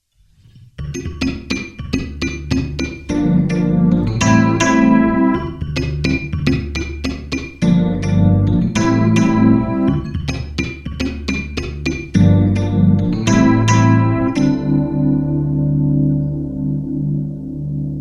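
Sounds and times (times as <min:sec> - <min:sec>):
dyno percussion: 0:00.8 - 0:14.8
Fender Rhodes electric piano: 0:01.0 - 0:18.0.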